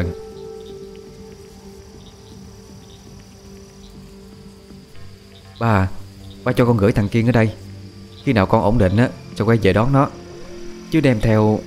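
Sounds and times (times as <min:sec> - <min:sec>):
frogs croaking outside as rain eases off: 0:00.0 - 0:11.6
speech: 0:05.6 - 0:07.6, 0:08.2 - 0:10.2, 0:10.9 - 0:11.6.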